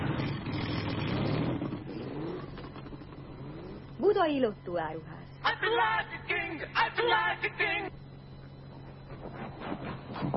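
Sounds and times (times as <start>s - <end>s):
ETZ 125 two-stroke motorcycle engine revving: 0.0s - 4.0s
speech: 4.1s - 8.0s.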